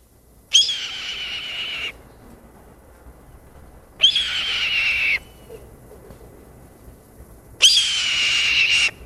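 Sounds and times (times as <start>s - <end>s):
red-tailed hawk raspy screams: 0.6s - 1.9s, 4.0s - 5.3s, 7.6s - 9.0s.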